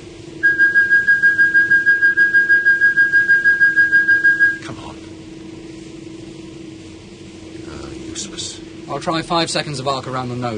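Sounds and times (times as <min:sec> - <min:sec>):
constant low hum: 0:00.0 - 0:10.2
telescope guidance audio reference signal pulsing electronic tone: 0:00.4 - 0:04.6
speech: 0:09.0 - 0:10.5.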